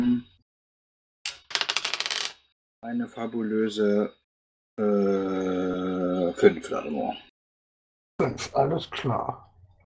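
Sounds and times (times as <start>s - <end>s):
dice rolled for damage during a tabletop role-playing game: 1.3s - 2.4s
speech: 2.9s - 4.2s, 4.8s - 7.3s, 8.2s - 9.5s.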